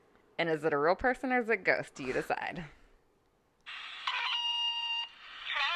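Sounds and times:
speech: 0.4 - 2.8
telephone tone: 3.7 - 5.6.

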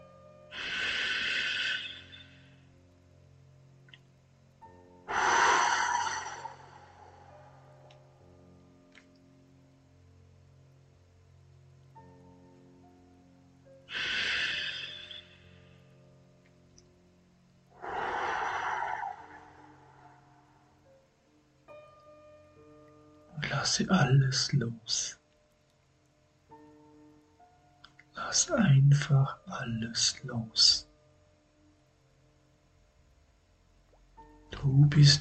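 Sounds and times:
deep slow breaths: 0.5 - 2.7, 5.1 - 7.8, 13.9 - 15.7, 17.7 - 20.7
speech: 23.6 - 25.2, 28.4 - 30.9, 34.6 - 35.1.

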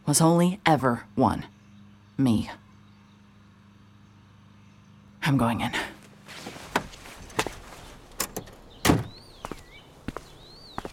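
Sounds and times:
birds chirping: 0.0 - 10.9
speech: 0.1 - 1.6, 2.2 - 2.6, 5.2 - 5.9
unlocked front door of a house opening with sharp clunks and knocks: 8.1 - 9.3.

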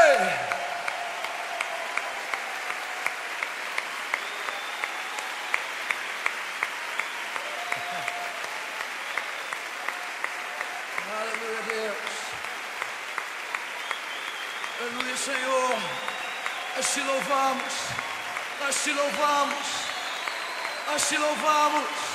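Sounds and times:
audience applauding: 0.0 - 22.1
speech: 18.7 - 19.8, 20.9 - 22.1.

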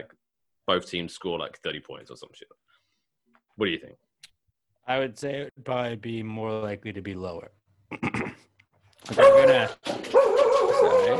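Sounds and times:
speech: 0.0 - 2.7, 3.6 - 4.0, 4.8 - 8.3, 9.1 - 10.2
dog barking: 9.1 - 11.1.

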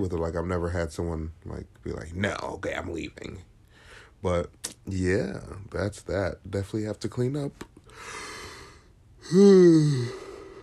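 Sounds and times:
speech: 0.0 - 3.5, 4.2 - 8.2, 9.2 - 10.3
person yawning: 9.2 - 10.6.

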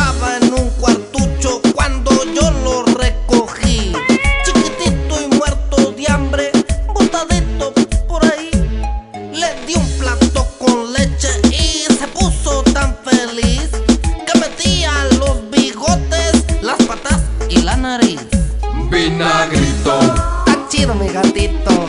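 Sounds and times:
reggaeton dance beat with deep bass pulses: 0.0 - 21.8
cat meowing: 3.9 - 5.0, 18.8 - 20.7.

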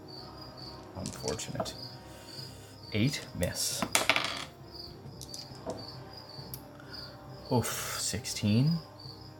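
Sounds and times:
d10 and d8 dice clattering and rattling across a hard table: 1.0 - 1.4, 3.8 - 4.5
speech: 1.2 - 2.0, 2.9 - 4.0, 7.5 - 8.9.

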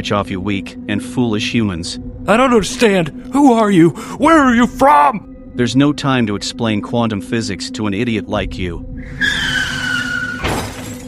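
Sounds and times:
speech: 0.0 - 9.6
minivan tires screeching in a skid: 9.0 - 10.8
minivan crashing into pole with shattering debris: 9.1 - 11.0.

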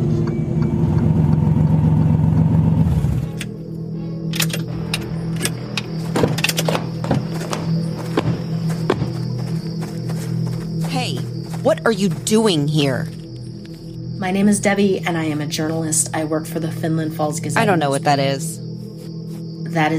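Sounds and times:
rented off-road truck engine rumbling and idling: 0.0 - 8.5
light footsteps: 5.9 - 14.0
speech: 11.8 - 13.2, 14.2 - 18.6, 19.7 - 19.9.

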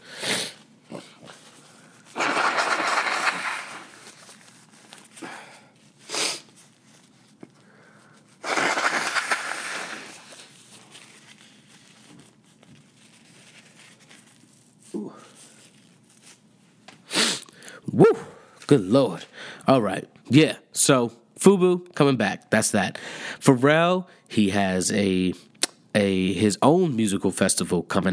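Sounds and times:
sniffing and snorting: 0.0 - 4.2, 8.4 - 10.4
nose blowing: 0.0 - 4.3, 5.2 - 6.6, 8.4 - 10.5, 17.1 - 18.4
speech: 18.7 - 28.1.

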